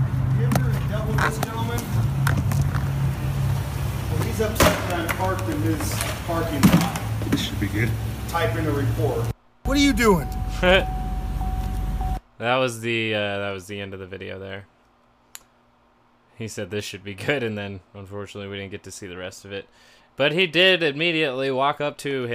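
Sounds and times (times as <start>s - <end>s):
car engine idling and humming steadily: 0.1s - 12.2s
speech: 12.6s - 14.7s, 16.4s - 22.3s.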